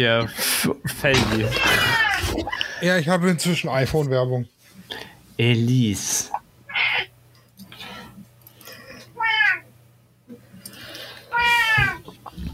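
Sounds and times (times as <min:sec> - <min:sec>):
speech: 0:00.0 - 0:06.4
cat meowing: 0:01.5 - 0:02.4, 0:06.7 - 0:07.1, 0:09.2 - 0:09.6, 0:11.3 - 0:12.1.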